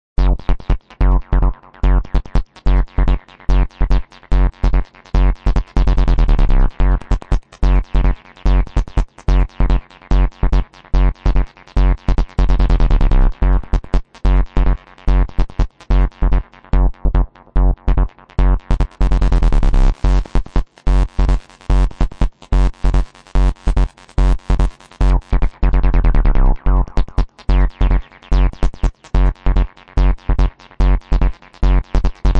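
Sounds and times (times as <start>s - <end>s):
acid bass: 0.2s - 32.3s
wobble techno music: 0.2s - 32.3s.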